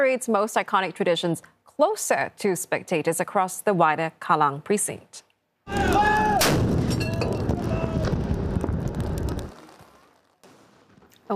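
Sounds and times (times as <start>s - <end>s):
speech: 0.0s - 6.1s
25-pounder howitzer guns firing a 21-gun salute from a raft on Kallang Basin: 5.8s - 9.6s.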